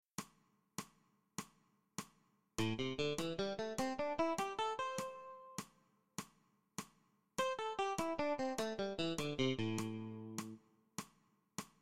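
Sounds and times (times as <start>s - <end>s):
muted strumming in eighth-note triplets: 2.6s - 5.2s, 7.5s - 10.6s.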